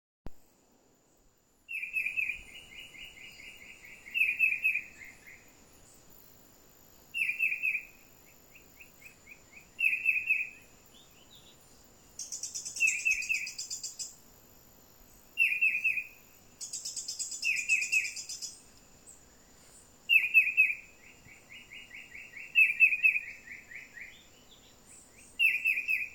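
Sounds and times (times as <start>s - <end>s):
green shrike vireo singing: 1.7s - 6.1s, 7.1s - 14.2s, 15.1s - 26.1s.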